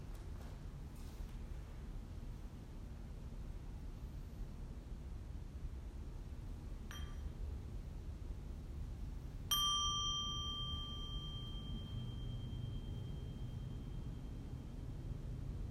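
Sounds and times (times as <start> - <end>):
steady low hiss: 0.0 - 15.6
soft brief ding: 6.9 - 7.6, 9.5 - 14.8
bell ringing as a transition signal: 9.5 - 14.8.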